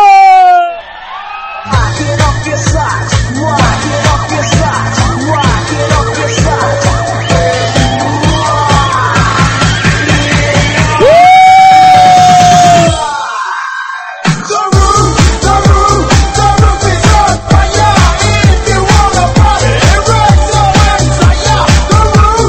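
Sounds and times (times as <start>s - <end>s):
loud rising whoop: 0.0s - 1.2s, 7.3s - 9.6s, 11.0s - 14.1s
dense noisy crowd screaming, roaring and cheering: 0.0s - 22.4s.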